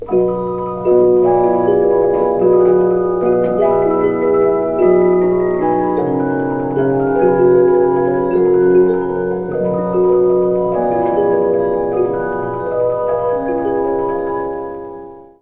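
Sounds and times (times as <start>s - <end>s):
Victorian music box melody: 0.0s - 15.4s.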